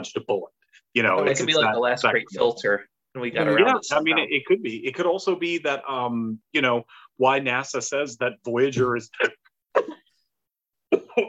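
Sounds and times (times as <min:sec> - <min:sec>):
speech: 0:00.0 - 0:09.9
person coughing: 0:09.2 - 0:10.1.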